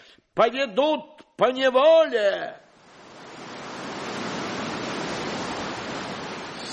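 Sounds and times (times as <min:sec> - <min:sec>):
speech: 0:00.4 - 0:02.6
sea waves and surf: 0:02.7 - 0:06.7.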